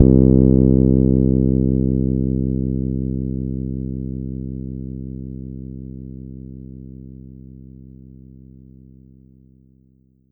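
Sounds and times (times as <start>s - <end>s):
synthesizer bass note C2: 0.0s - 4.8s.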